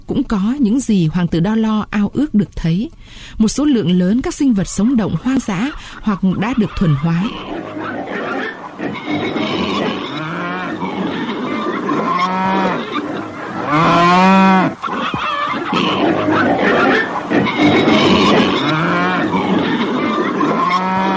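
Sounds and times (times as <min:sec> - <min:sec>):
steady outdoor noise: 0:00.0 - 0:21.1
speech: 0:00.1 - 0:07.9
several cows mooing on a pasture: 0:06.2 - 0:21.1.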